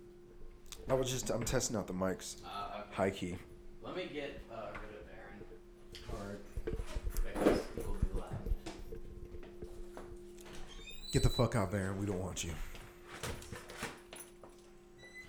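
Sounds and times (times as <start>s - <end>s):
speech: 0.8s - 4.9s, 11.1s - 12.7s
soft shuffling movement of a dog: 3.3s - 13.2s
neutered male dog whimpering: 10.8s - 11.5s.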